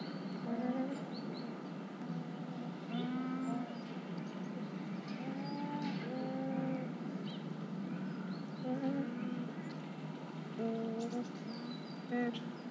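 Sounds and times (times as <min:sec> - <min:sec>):
Hawaiian geese calling: 0:00.0 - 0:12.6.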